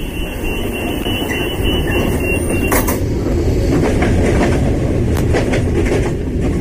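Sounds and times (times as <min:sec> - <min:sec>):
train rumbling on rails: 0:00.0 - 0:06.5
train wheels clacking and squeaking over the track: 0:00.0 - 0:06.5.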